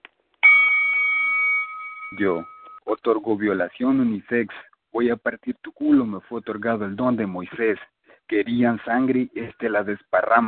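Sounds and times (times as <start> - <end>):
bell ringing: 0.4 - 2.8
speech: 2.1 - 10.4.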